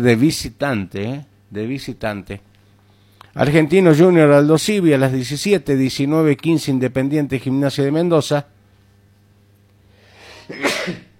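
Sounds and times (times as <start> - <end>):
speech: 0.0 - 2.5, 3.4 - 8.6, 10.5 - 11.1
person sneezing: 10.2 - 11.1.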